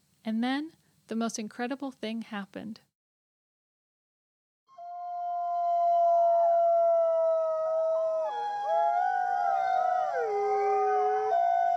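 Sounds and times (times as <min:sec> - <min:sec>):
speech: 0:00.3 - 0:02.9
several wolves howling in chorus: 0:04.8 - 0:11.7.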